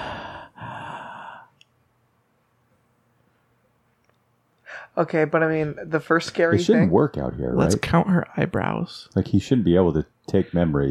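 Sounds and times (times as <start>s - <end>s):
man in a raincoat breathing heavily: 0.0s - 1.5s
speech: 5.0s - 10.8s.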